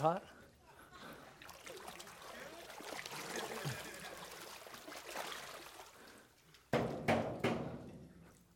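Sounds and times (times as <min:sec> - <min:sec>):
speech: 0:00.0 - 0:00.3
water pouring and splattering: 0:01.3 - 0:06.8.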